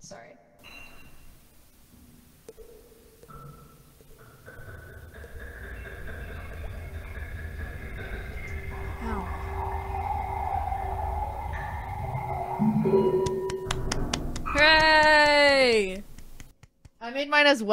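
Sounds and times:
red wine pouring with huge washy reverb: 0:02.3 - 0:13.6
sharp ticks: 0:02.4 - 0:17.0
speech: 0:17.2 - 0:17.7.

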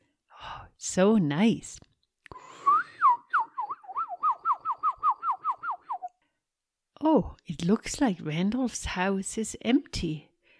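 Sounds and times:
speech: 0:00.8 - 0:01.9, 0:07.0 - 0:10.3
bird singing whistled notes in the woods: 0:03.2 - 0:06.1.

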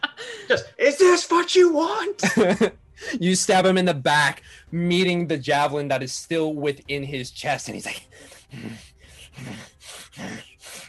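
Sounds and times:
speech: 0:00.5 - 0:10.8
heavy rasping breathing by a person voicing a wounded character: 0:08.0 - 0:10.8.

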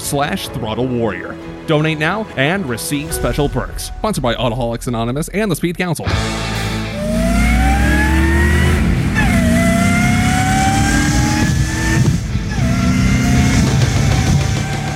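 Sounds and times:
speech: 0:00.1 - 0:06.5
supercharged V8 engine revving with high whine: 0:06.4 - 0:14.9.

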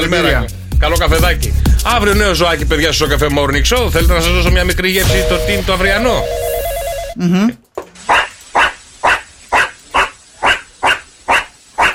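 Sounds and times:
speech: 0:00.1 - 0:06.5, 0:07.2 - 0:08.2
tonal jingle: 0:05.0 - 0:07.2
dog barking: 0:08.1 - 0:11.9.

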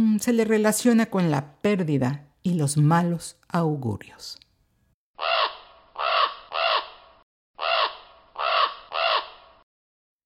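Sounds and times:
speech: 0:00.2 - 0:04.4
crow cawing: 0:05.2 - 0:09.6.

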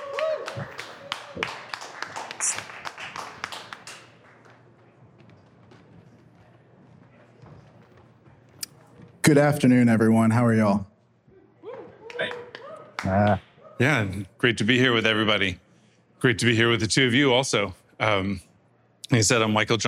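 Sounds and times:
audience applause: 0:00.0 - 0:05.0
speech: 0:09.3 - 0:10.9, 0:13.1 - 0:15.6, 0:16.2 - 0:18.5, 0:19.1 - 0:19.8.

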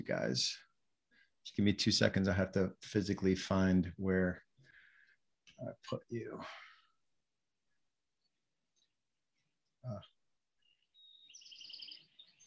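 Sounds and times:
speech: 0:00.0 - 0:00.7, 0:01.4 - 0:04.4, 0:05.6 - 0:06.7, 0:09.8 - 0:10.1
small birds chirping: 0:08.2 - 0:12.4.

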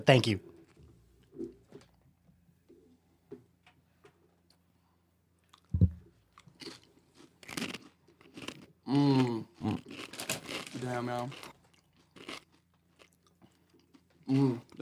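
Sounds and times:
speech: 0:00.0 - 0:00.5, 0:08.9 - 0:09.8, 0:10.8 - 0:11.5, 0:14.3 - 0:14.7
crunchy yellow corn tortilla chips being chewed: 0:06.3 - 0:14.7.

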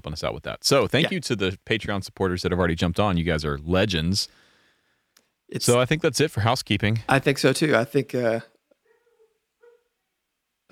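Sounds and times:
speech: 0:00.0 - 0:04.4, 0:05.5 - 0:08.5
dog whimpering with soft drawn-out whines: 0:08.8 - 0:10.2.

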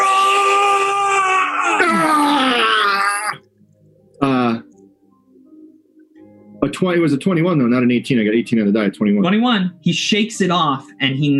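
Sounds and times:
person vocally imitating a scream of agony: 0:00.0 - 0:03.4
speech: 0:06.7 - 0:11.3.

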